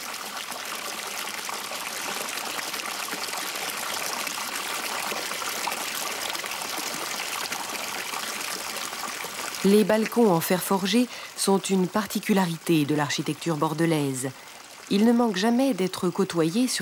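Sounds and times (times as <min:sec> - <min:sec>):
fountain water features splashing at ornamental 18th- and 19th-century buildings in Bordeaux: 0:00.0 - 0:16.7
speech: 0:09.6 - 0:16.7.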